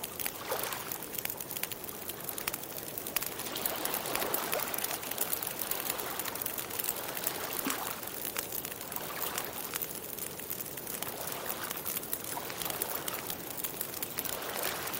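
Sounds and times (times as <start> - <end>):
campfire by the beach crackling: 0.0 - 14.9
constant soft wash of surf or wind: 3.1 - 9.8, 10.9 - 14.9.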